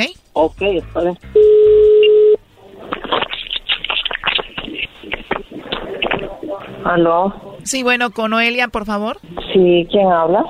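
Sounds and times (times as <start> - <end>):
speech: 0.0 - 1.4, 6.8 - 10.4
steady buzzing telephone line tone: 1.4 - 2.4.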